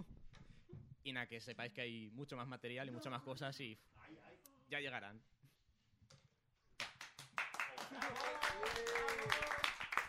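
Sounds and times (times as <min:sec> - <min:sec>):
speech: 0:01.0 - 0:05.3, 0:07.9 - 0:09.7
crowd applauding: 0:06.8 - 0:10.0.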